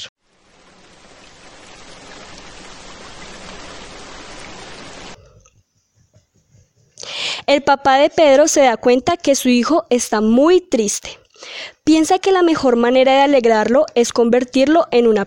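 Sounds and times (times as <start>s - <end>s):
steady dense rain falling: 0.0s - 5.2s
speech: 7.5s - 15.2s.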